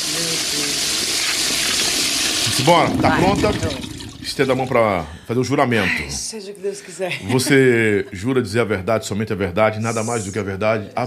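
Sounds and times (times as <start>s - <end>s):
water rushing: 0.4s - 5.1s
speech: 2.6s - 11.0s.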